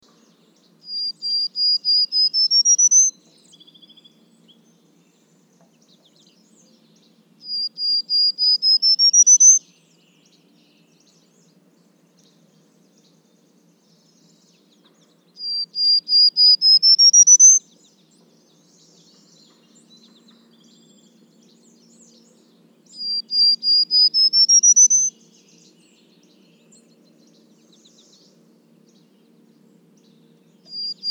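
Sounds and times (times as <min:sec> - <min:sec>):
Prairie Warbler Setophaga discolor: 0:00.0 - 0:31.1.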